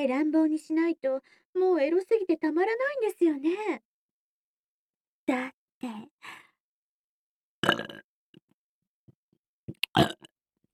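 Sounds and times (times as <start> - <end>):
speech: 0.0 - 3.9, 5.3 - 6.4, 10.0 - 10.3
person burping: 7.6 - 8.0, 9.8 - 10.3.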